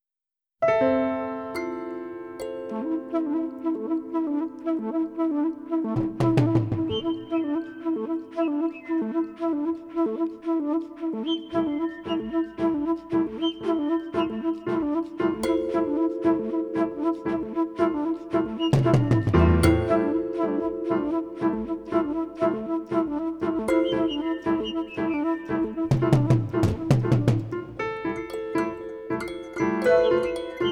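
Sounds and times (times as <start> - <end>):
piano: 0.6 - 30.6
kalimba: 1.6 - 4.2, 11.8 - 30.6
flute: 1.8 - 30.6
tubes: 2.4 - 30.6.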